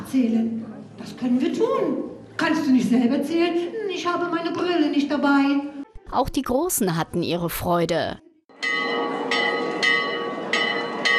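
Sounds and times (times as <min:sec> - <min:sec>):
speech: 0:00.1 - 0:08.2
castle tower bell ringing: 0:08.5 - 0:11.1.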